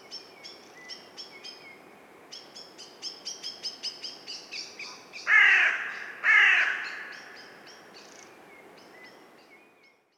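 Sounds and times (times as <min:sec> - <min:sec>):
carrion crow cawing: 0:05.3 - 0:07.4.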